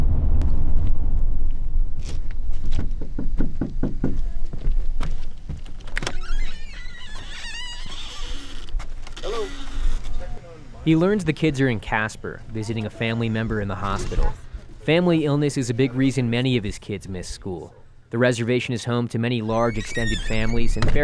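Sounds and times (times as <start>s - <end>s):
steady low rumble: 0.0s - 2.9s
knocking on a front door of a student's home on a reservation: 2.8s - 4.4s
creaking: 5.6s - 10.3s, 19.5s - 21.0s
speech: 10.9s - 21.0s.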